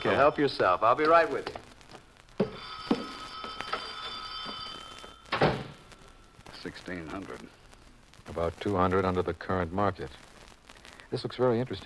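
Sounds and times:
speech: 0.0s - 1.7s, 6.6s - 7.6s, 8.3s - 10.3s, 11.1s - 11.8s
telephone ringing in an office: 2.4s - 6.2s.

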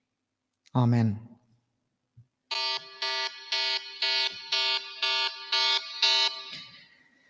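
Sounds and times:
speech: 0.7s - 1.3s
loud alarm ringing in harsh buzzing pulses: 2.5s - 6.9s.

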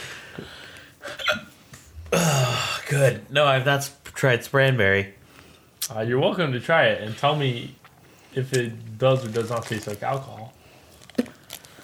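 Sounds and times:
soft breathing: 0.0s - 2.9s, 5.2s - 5.8s, 7.0s - 8.5s, 10.5s - 11.8s
speech: 0.4s - 0.6s, 2.9s - 5.2s, 5.9s - 7.8s, 8.4s - 10.6s
person hiccuping: 1.1s - 2.7s.

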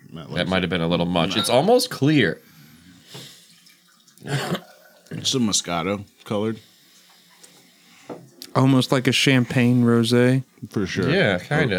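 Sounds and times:
speech: 0.2s - 2.5s, 4.2s - 6.7s, 8.6s - 11.7s
water poured into apple juice to dilute it: 3.2s - 5.8s.

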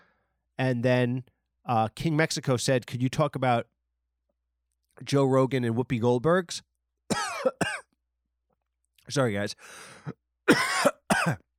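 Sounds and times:
speech: 0.6s - 3.7s, 5.0s - 7.8s, 9.1s - 11.5s
person coughing: 7.1s - 7.9s, 10.0s - 11.5s.

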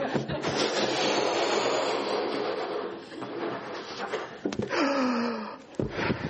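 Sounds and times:
rubbery balloon squeak: 0.0s - 4.9s
puffs of air blown by mouth into a balloon: 0.0s - 6.2s.

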